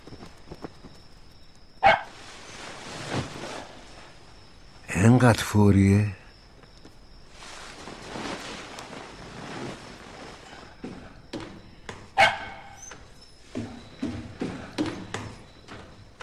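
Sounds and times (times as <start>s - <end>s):
dog barking: 1.8s - 2.1s, 12.2s - 12.8s
speech: 5.0s - 6.2s.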